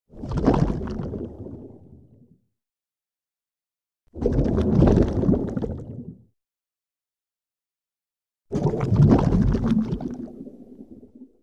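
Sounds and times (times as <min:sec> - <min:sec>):
underwater sound: 0:00.1 - 0:02.4, 0:04.2 - 0:06.3, 0:08.5 - 0:11.4.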